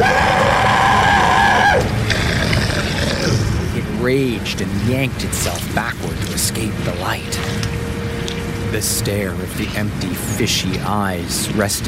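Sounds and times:
creature roaring and screaming in pain: 0.0s - 3.7s
speech: 4.1s - 7.8s, 8.7s - 11.8s.

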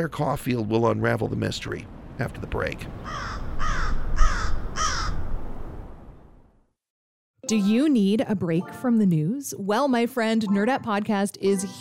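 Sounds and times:
speech: 0.0s - 3.8s, 7.5s - 11.8s
crow cawing in Chicago: 3.0s - 5.3s.

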